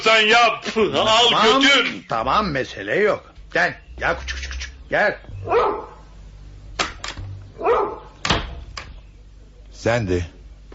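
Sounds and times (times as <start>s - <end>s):
speech: 0.0s - 5.9s, 9.8s - 10.4s
dog tied to a bedstead leg barking: 5.4s - 6.1s, 7.6s - 8.2s.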